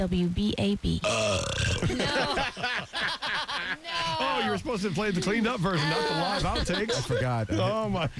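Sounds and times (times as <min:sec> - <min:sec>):
speech: 0:00.0 - 0:08.1
long loud burp: 0:01.0 - 0:02.0
laughter: 0:01.7 - 0:08.1.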